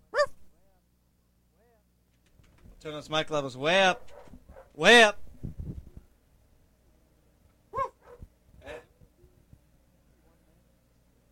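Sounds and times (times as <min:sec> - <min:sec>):
low hum: 0:00.0 - 0:11.2
dog barking: 0:00.1 - 0:00.4, 0:03.9 - 0:04.8, 0:07.7 - 0:09.0
speech: 0:02.8 - 0:04.2, 0:04.8 - 0:05.2.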